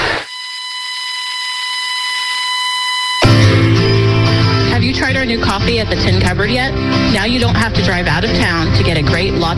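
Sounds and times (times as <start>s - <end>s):
loud steady electronic buzzer blaring: 0.2s - 4.8s
speech: 5.3s - 9.5s.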